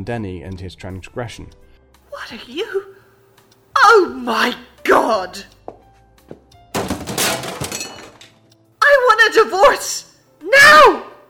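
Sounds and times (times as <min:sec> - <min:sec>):
speech: 0:00.0 - 0:01.7, 0:02.3 - 0:03.0, 0:03.9 - 0:05.6, 0:09.3 - 0:11.1
lamp shattering with a loud crash: 0:06.7 - 0:08.4
broken lamp pieces scattering and clattering: 0:06.8 - 0:08.4.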